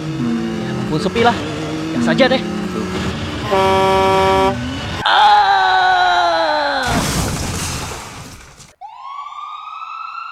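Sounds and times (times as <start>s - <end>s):
car horns honking in a traffic jam: 0.0s - 5.1s
traffic hum in a traffic jam: 0.0s - 8.8s
speech: 0.9s - 4.6s.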